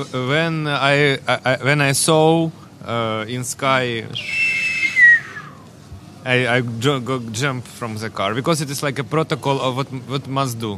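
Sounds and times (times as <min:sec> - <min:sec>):
speech: 0:00.0 - 0:04.4, 0:06.2 - 0:10.7
high whistle of an incoming shell: 0:04.2 - 0:05.6.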